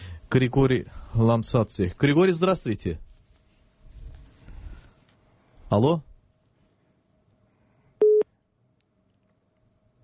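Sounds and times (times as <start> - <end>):
speech: 0.3 - 3.0, 5.7 - 6.1
telephone busy tone beep after the line cuts off: 8.0 - 8.2.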